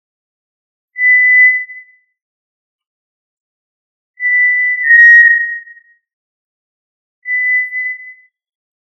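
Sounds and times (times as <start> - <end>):
tinamou giving clear level whistles: 1.0 - 2.0, 4.2 - 5.9, 7.2 - 8.4.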